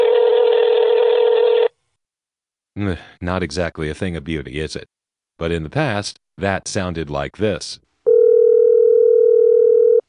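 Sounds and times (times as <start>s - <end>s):
telephone ringback tone while a call waits to be answered: 0.0s - 1.7s, 8.1s - 10.0s
speech: 2.8s - 7.8s.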